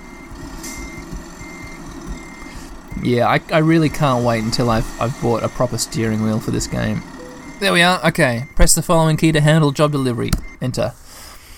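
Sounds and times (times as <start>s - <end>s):
constant low truck engine drone in a video game: 0.0s - 8.9s
truck reversing beeps in a truck-driving video game: 0.0s - 11.2s
speech: 3.0s - 11.0s.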